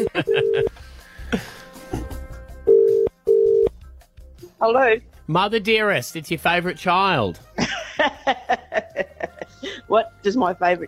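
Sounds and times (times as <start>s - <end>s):
electronic phone dialing tones: 0.0s - 0.7s, 2.7s - 3.7s
laughter: 0.0s - 0.7s, 7.6s - 9.8s
speech: 4.6s - 7.7s, 9.9s - 10.8s.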